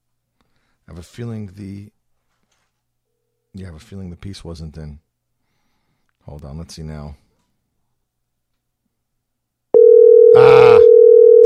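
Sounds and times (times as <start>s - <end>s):
speech: 0.9s - 2.0s, 3.6s - 5.0s, 6.3s - 7.2s
telephone dial tone while placing call: 9.8s - 11.4s.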